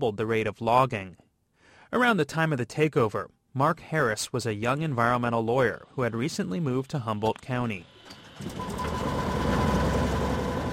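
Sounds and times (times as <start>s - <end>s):
speech: 0.0s - 1.2s, 1.9s - 8.9s
Cessna small propeller plane engine starting: 7.8s - 10.7s.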